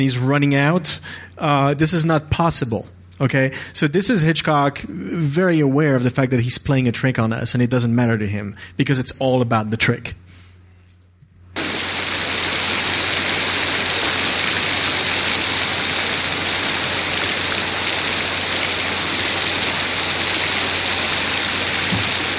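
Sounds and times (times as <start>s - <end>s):
speech: 0.0s - 10.2s
heavy rain in a film scene: 11.6s - 22.3s
low hum: 11.6s - 22.3s.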